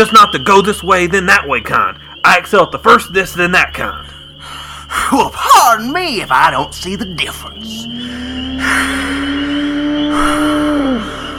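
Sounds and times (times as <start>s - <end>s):
speech: 0.0s - 9.1s
continuous thin whistling tone sliding down in pitch: 0.0s - 11.3s
wheezing breath: 4.0s - 5.1s, 8.0s - 11.3s.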